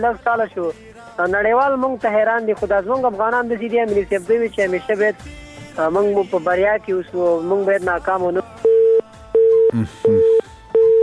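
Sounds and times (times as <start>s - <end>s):
speech: 0.0s - 8.5s, 9.7s - 10.4s
telephone busy signal after a call is cut off: 8.6s - 11.0s
brief voice: 9.7s - 10.2s.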